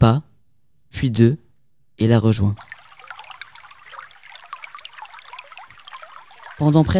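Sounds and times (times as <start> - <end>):
speech: 0.0 - 0.3, 1.0 - 1.4, 2.0 - 2.7, 6.6 - 6.9
mountain stream trickling and babbling: 2.6 - 6.9.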